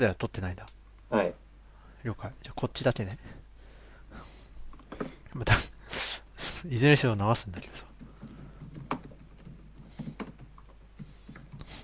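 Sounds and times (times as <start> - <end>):
speech: 0.0 - 1.4, 2.0 - 3.4, 5.0 - 5.7, 6.6 - 7.9
low steady hum: 0.0 - 11.8
keyboard typing: 7.9 - 11.8.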